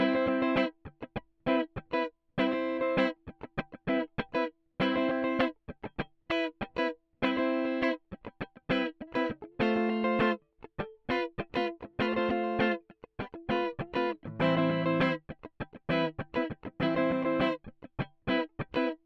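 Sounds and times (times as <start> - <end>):
rhythm guitar with high shelf cut at 4000 Hz: 0.0 - 19.0.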